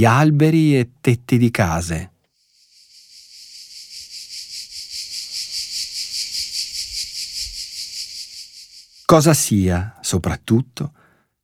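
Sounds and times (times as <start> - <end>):
speech: 0.0 - 2.1, 9.1 - 11.0
cicadas buzzing in a continuous shimmering drone: 2.3 - 9.2.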